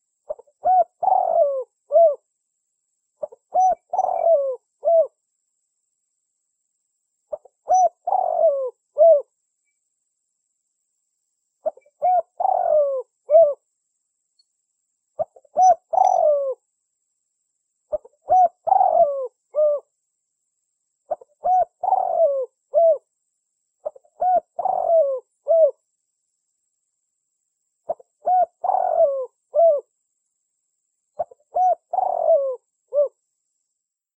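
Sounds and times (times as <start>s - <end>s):
Spotted Dove cooing as a lure call: 0.0s - 2.2s, 3.2s - 5.2s, 7.3s - 9.3s, 11.6s - 13.6s, 15.2s - 16.6s, 17.9s - 19.9s, 21.1s - 23.1s, 23.8s - 25.8s, 27.9s - 29.9s, 31.2s - 33.2s.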